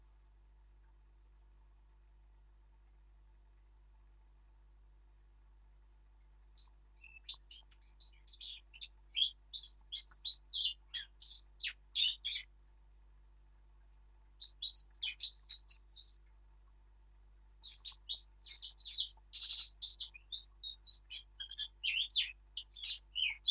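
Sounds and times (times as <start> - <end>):
Eurasian blackcap Sylvia atricapilla warbling song: 6.6 - 12.5, 14.4 - 16.2, 17.6 - 23.5.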